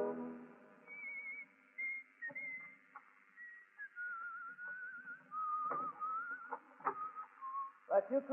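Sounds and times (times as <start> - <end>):
person whistling a wavering melody: 0.9 - 2.8, 3.3 - 7.9.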